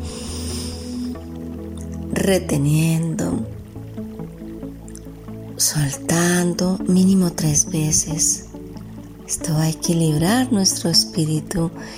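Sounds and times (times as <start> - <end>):
deep breath in through the nose as a breathing exercise: 0.0 - 1.2
speech: 2.1 - 3.6, 5.6 - 8.4, 9.3 - 11.9.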